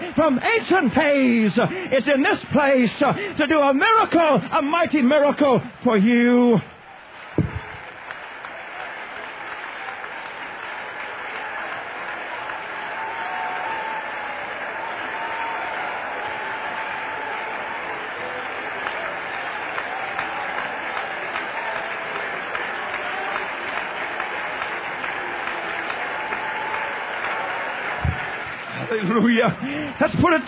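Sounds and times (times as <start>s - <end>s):
large crowd applauding in a standing ovation: 0.0s - 30.4s
speech: 0.2s - 6.7s, 29.4s - 30.4s
faint cheering: 6.8s - 29.9s.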